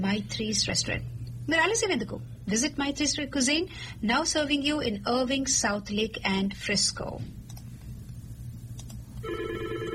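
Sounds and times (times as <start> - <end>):
speech: 0.0 - 7.4
low hum: 0.0 - 9.9
telephone ringing with an incoming call: 9.2 - 9.9.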